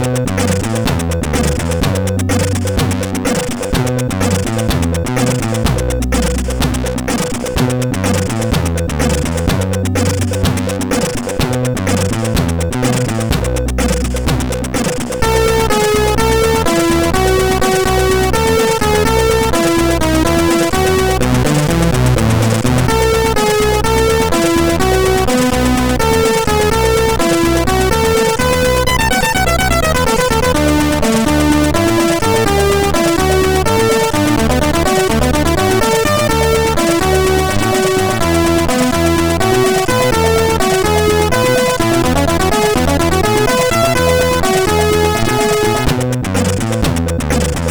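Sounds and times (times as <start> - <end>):
MOS6581R4 SID sound chip synth: 0.0 - 47.7.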